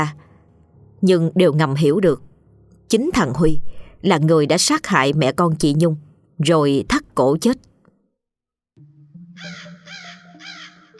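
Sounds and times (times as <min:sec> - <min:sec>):
speech: 0:00.0 - 0:00.2, 0:01.0 - 0:02.3, 0:02.9 - 0:07.7
crows cawing at night: 0:09.4 - 0:10.9
owls screeching at night: 0:09.4 - 0:10.9.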